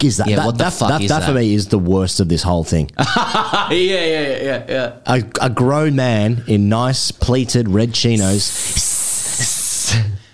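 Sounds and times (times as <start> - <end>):
speech: 0.0 - 9.0
laughter: 0.1 - 1.4, 3.0 - 5.0
person imitating a hissing sound: 8.2 - 10.2.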